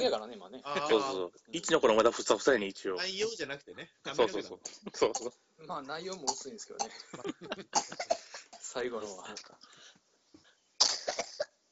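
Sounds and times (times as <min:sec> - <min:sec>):
speech: 0:00.0 - 0:09.8
laughter: 0:06.9 - 0:08.1
person coughing after choking on mandarin orange: 0:07.8 - 0:08.6, 0:10.8 - 0:11.6.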